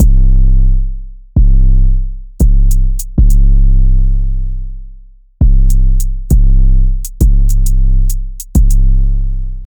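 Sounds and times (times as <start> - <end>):
trap drums: 0.0 - 0.4, 2.4 - 4.0, 5.4 - 9.2
808 bass: 0.0 - 9.6.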